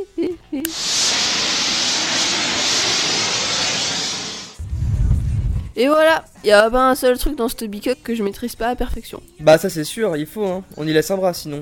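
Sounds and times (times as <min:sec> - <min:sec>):
blowtorch roaring while lighting a gas oven with a broken piezo igniter: 0:00.7 - 0:05.6
speech: 0:05.8 - 0:11.6.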